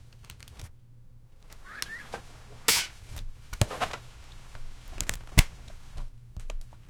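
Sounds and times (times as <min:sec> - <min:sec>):
feet shuffling: 0:01.6 - 0:06.1.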